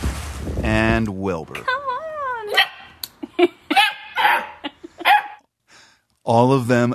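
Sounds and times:
speech: 0:00.7 - 0:01.8, 0:03.4 - 0:03.6, 0:06.3 - 0:06.9
dogs barking: 0:02.5 - 0:03.0, 0:03.7 - 0:05.5
laughter: 0:03.2 - 0:05.2.

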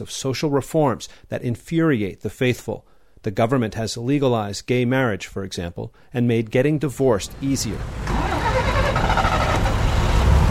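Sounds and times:
speech: 0:00.0 - 0:08.2
street traffic of passing cars and buses at a city bus stop: 0:07.3 - 0:10.5.

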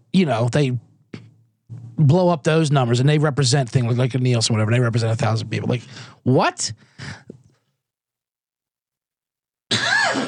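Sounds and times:
speech: 0:00.2 - 0:00.9, 0:02.0 - 0:07.4
rough raspy coughing and throat clearing: 0:09.7 - 0:10.2.

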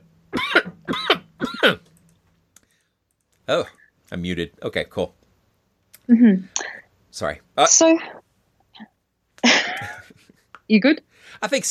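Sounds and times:
harsh raspy coughs: 0:00.3 - 0:01.9, 0:09.4 - 0:10.0
speech: 0:01.6 - 0:01.9, 0:03.5 - 0:05.2, 0:06.1 - 0:08.2, 0:10.7 - 0:11.6.

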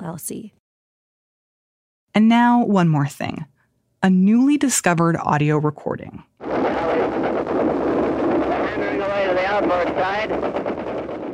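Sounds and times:
speech: 0:00.0 - 0:00.6, 0:02.1 - 0:06.6, 0:07.2 - 0:08.1, 0:08.7 - 0:11.0
rapid anti-aircraft gunfire: 0:06.4 - 0:11.3
aircraft droning overhead: 0:08.1 - 0:10.6.

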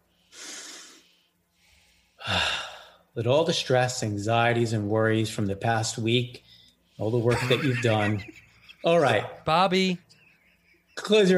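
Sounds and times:
deep breath during a guided relaxation exercise: 0:00.0 - 0:03.1
speech: 0:03.2 - 0:10.1, 0:11.0 - 0:11.3
laughter: 0:07.2 - 0:09.4, 0:10.0 - 0:11.3.

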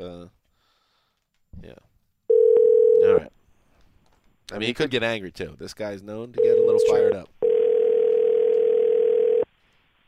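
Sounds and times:
speech: 0:01.6 - 0:01.9, 0:04.6 - 0:07.4
telephone ring tone on a call waiting for voicemail: 0:02.3 - 0:03.2, 0:06.4 - 0:09.5.

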